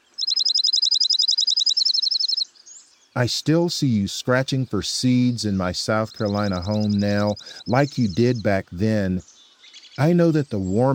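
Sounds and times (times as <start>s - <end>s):
Dark-eyed Junco singing a fast even high trill: 0.0s - 3.2s, 5.6s - 10.9s
speech: 3.2s - 9.3s, 10.0s - 10.9s.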